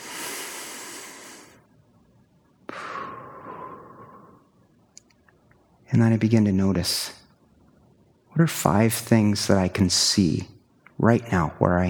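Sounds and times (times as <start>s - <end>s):
slow deep breathing during a calming exercise: 0.0s - 1.7s, 2.7s - 4.8s
speech: 5.9s - 7.2s, 8.4s - 11.8s.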